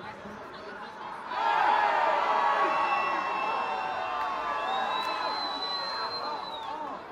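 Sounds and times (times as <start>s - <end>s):
small football crowd shouting at a foul in London: 1.2s - 7.0s
small football crowd whistling at a foul in London: 2.6s - 7.0s.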